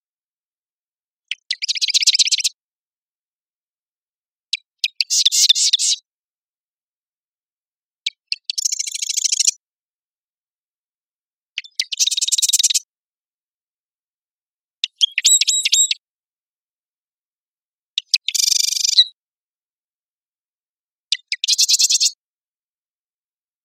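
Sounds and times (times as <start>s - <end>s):
male marsh wren Cistothorus palustris singing in Marymoor Park, Redmond, Washington, USA: 1.4s - 2.6s, 4.6s - 6.0s, 8.1s - 9.6s, 11.6s - 12.8s, 14.8s - 16.0s, 18.0s - 19.2s, 21.1s - 22.2s.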